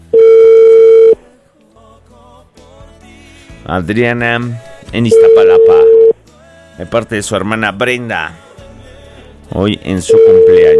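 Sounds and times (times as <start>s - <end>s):
telephone line tone while dialing a call: 0.0s - 1.2s, 5.1s - 6.2s, 10.0s - 10.7s
speech: 3.7s - 6.0s, 6.8s - 8.4s, 9.5s - 10.7s.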